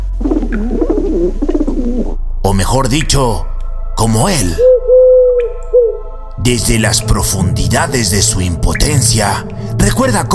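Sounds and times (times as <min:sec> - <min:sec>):
caged pigeon cooing: 0:00.0 - 0:02.2, 0:04.6 - 0:06.0
speech: 0:00.5 - 0:01.5, 0:02.5 - 0:05.0, 0:06.4 - 0:10.3.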